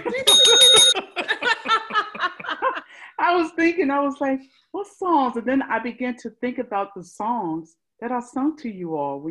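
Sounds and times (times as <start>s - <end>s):
bright bell ringing: 0.0s - 1.0s
person talking or laughing: 0.0s - 3.0s
speech: 3.6s - 9.3s.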